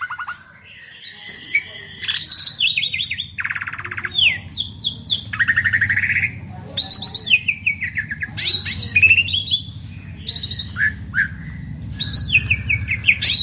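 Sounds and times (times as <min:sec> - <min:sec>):
Asian pied starling song: 0:00.0 - 0:13.4
low background hum: 0:01.1 - 0:13.4.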